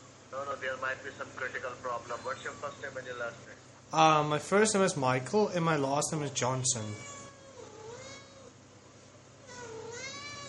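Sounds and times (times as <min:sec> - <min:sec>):
low steady hum: 0:00.0 - 0:10.4
speech: 0:00.4 - 0:07.2
cat meowing: 0:06.8 - 0:08.5, 0:09.5 - 0:10.4.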